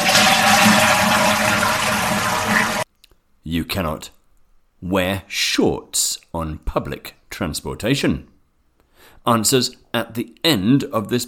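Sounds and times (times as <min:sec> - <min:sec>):
toilet flushing: 0:00.0 - 0:02.8
speech: 0:03.5 - 0:04.2, 0:04.8 - 0:08.3, 0:09.2 - 0:11.2.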